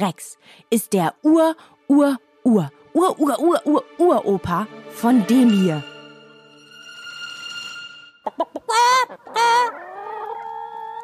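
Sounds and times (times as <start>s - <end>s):
speech: 0.0s - 5.9s
chicken clucking and squawking: 8.2s - 11.0s.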